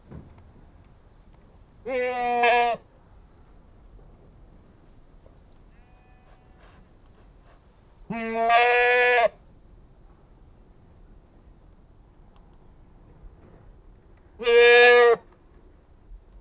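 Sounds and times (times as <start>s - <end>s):
Anglo-Nubian goat bleating: 1.9s - 2.8s, 8.1s - 9.3s.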